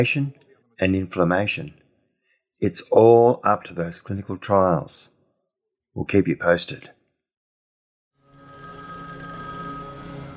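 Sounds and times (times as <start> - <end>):
speech: 0.0 - 1.8, 2.6 - 5.1, 6.0 - 7.0
telephone bell ringing: 8.2 - 10.3.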